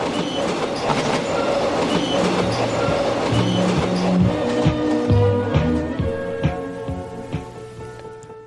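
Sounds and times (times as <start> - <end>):
train wheels clacking over rail joints: 0.0 - 5.8
1990s train rumbling along rails: 0.0 - 8.2.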